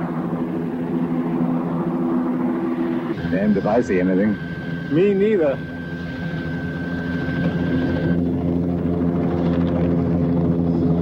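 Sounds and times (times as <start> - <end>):
thin high whine: 0.0 - 8.8
helicopter flying off with rotors chopping: 0.0 - 10.9
speech: 3.3 - 5.7.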